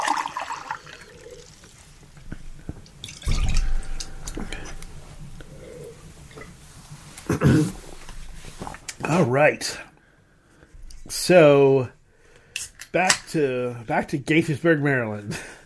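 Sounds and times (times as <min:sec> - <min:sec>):
water splashing and dripping as a glass is rinsed between beers: 0:00.0 - 0:06.7
speech: 0:07.4 - 0:07.8, 0:09.2 - 0:09.9, 0:11.2 - 0:12.0, 0:12.9 - 0:15.5.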